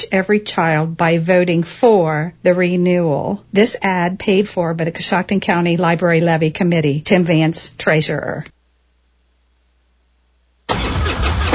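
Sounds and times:
speech: 0.1 - 8.5
American motorcycle engine starting: 10.7 - 11.5.

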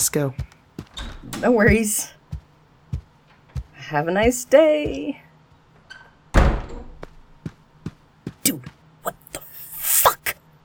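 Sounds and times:
speech: 0.0 - 0.5, 1.2 - 2.2, 3.9 - 5.2
door swinging closed with a solid thud: 6.4 - 7.0.

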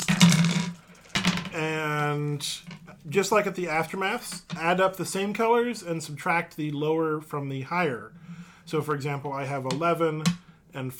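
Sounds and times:
dice rattling across a hard surface: 0.0 - 1.6
speech: 1.6 - 10.9.

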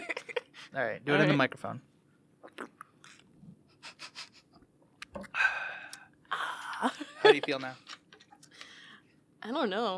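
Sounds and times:
speech: 0.7 - 1.9, 2.6 - 2.8, 6.8 - 7.9, 9.4 - 9.9
person gulping water with wet swallowing clicks: 2.4 - 3.2
breathy exhale at the microphone: 5.3 - 6.1.

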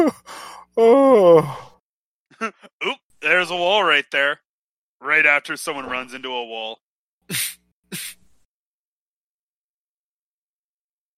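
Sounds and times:
speech: 0.0 - 0.2, 0.8 - 1.6, 3.3 - 4.4, 5.0 - 8.2
person sneezing: 7.3 - 8.3.

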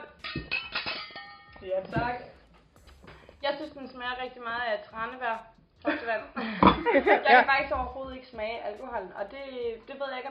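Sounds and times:
glasses of homemade vodka cranberry cocktail clinking in a toast: 0.2 - 2.2, 6.6 - 6.9
speech: 1.7 - 2.3, 3.5 - 10.3
laughter: 6.4 - 7.7.

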